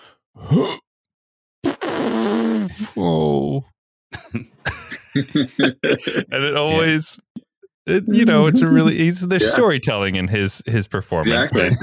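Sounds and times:
speech: 0.5s - 0.8s, 2.8s - 11.8s
person imitating a fart with a buzzy vocal blurt: 1.6s - 2.9s
laughter: 4.2s - 7.2s, 7.9s - 11.8s.

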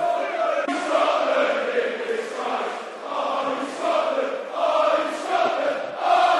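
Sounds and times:
football fans chanting in stadium during a match: 0.0s - 6.3s.

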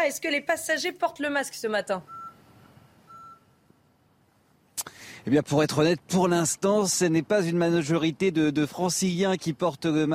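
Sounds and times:
speech: 0.0s - 2.2s, 5.2s - 10.1s
low traffic rumble outside a bus station in Paris: 0.0s - 10.1s
electronic beeps outside a bus station: 2.0s - 2.4s, 3.1s - 3.6s.

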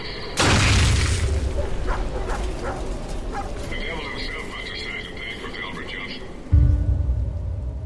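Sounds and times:
heavy explosion: 0.4s - 1.6s, 6.5s - 7.8s
dogs barking and whining: 1.5s - 3.7s
deep boom: 6.5s - 7.8s.

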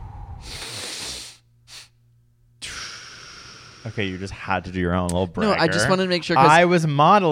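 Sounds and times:
long mouth exhale: 0.0s - 2.0s, 2.6s - 4.2s
nasal inhales: 0.0s - 2.0s, 2.6s - 4.2s
speech: 3.8s - 7.3s.

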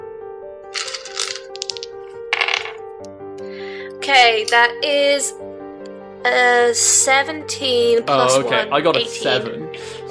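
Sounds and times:
die clattering and tumbling across a hard tabletop: 0.8s - 2.8s
speech: 4.1s - 5.5s, 6.2s - 10.1s.

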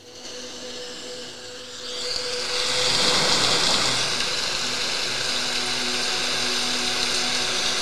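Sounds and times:
dense rain-like hiss: 2.1s - 7.8s.

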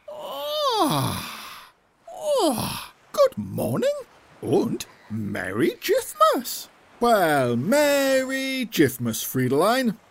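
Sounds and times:
person yawning: 0.1s - 2.9s
speech: 3.6s - 10.0s.

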